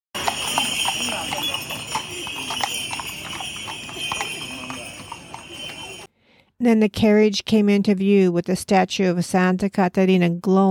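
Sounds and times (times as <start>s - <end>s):
horse hooves clopping on pavement: 0.1s - 6.1s
light jingle of oxen's bells: 0.1s - 6.1s
faint murmuring of a pilgrimage procession: 0.4s - 6.1s
speech: 6.6s - 10.6s.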